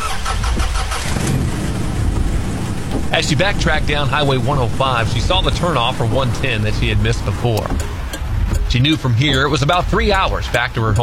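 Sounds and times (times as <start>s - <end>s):
rainstorm: 0.0s - 7.5s
car engine cranking, catching and idling: 0.0s - 11.0s
speech: 3.2s - 8.0s, 8.7s - 11.0s.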